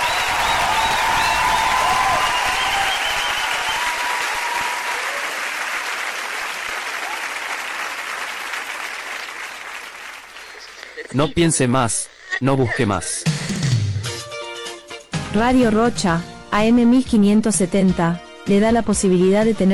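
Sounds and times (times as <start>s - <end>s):
cheering: 0.0s - 10.3s
large audience applause: 0.0s - 11.0s
speech: 11.2s - 13.4s, 15.3s - 19.7s.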